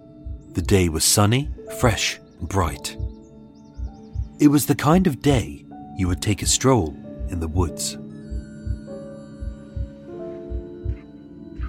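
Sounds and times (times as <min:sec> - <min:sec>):
heavy heartbeat in a lub-dub rhythm: 0:00.2 - 0:00.8, 0:01.4 - 0:01.7, 0:02.9 - 0:04.4, 0:08.3 - 0:11.6
speech: 0:00.5 - 0:03.0, 0:04.4 - 0:08.0.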